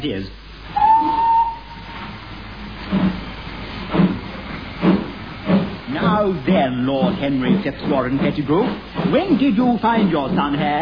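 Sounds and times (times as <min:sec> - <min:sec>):
speech: 0:00.0 - 0:00.4, 0:06.2 - 0:10.7
hissing chuffing steam of a steam train: 0:00.4 - 0:10.7
steam train whistle: 0:00.7 - 0:02.1
steady rumbling: 0:01.6 - 0:10.7.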